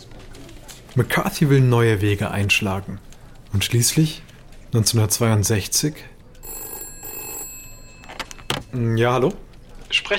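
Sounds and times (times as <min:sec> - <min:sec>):
speech: 0:01.0 - 0:06.1, 0:08.7 - 0:10.1
telephone bell ringing: 0:06.4 - 0:08.9.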